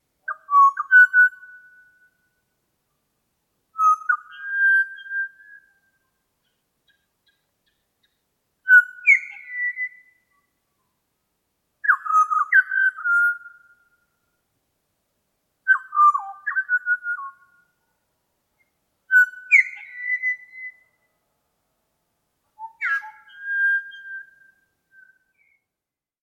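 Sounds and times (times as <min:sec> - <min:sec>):
pied butcherbird singing solo: 0:00.2 - 0:02.2, 0:03.7 - 0:10.9, 0:11.8 - 0:14.1, 0:15.6 - 0:17.9, 0:18.6 - 0:21.1, 0:22.6 - 0:25.7.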